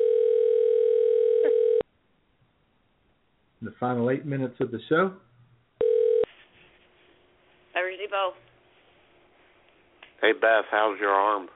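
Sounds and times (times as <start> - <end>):
telephone dial tone while placing a call: 0.0 - 1.8, 5.8 - 6.3
speech: 3.6 - 5.3, 10.3 - 11.5.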